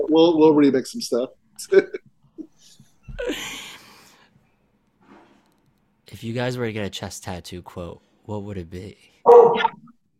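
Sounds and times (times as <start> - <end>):
speech: 0.0 - 2.0, 3.2 - 3.6, 6.1 - 9.9
dog barking: 9.2 - 9.8.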